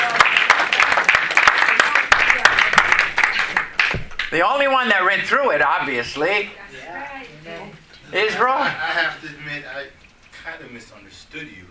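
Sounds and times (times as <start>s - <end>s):
crowd applauding: 0.0s - 4.4s
speech: 4.3s - 7.1s, 8.1s - 11.7s.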